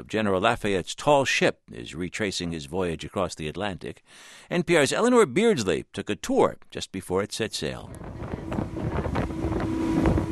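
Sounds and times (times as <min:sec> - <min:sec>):
speech: 0:00.1 - 0:08.3
gusty wind buffeting: 0:07.9 - 0:10.3
speedboat engine drone motoring across the water off the coast of western France: 0:07.9 - 0:10.3.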